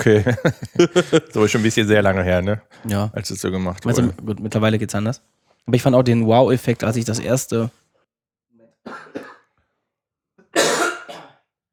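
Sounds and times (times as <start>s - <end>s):
laughter: 0.0s - 1.9s
speech: 0.0s - 7.8s
person clearing throat: 3.9s - 4.2s, 8.9s - 9.5s, 10.5s - 11.4s.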